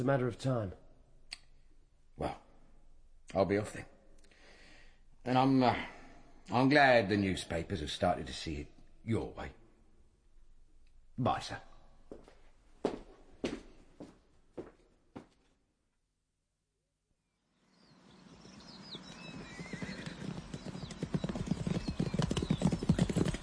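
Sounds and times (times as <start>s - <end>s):
speech: 0.0s - 0.8s, 2.2s - 2.4s, 3.3s - 3.9s, 5.2s - 9.6s, 11.2s - 11.7s
horse hooves clip-clopping: 18.3s - 23.4s.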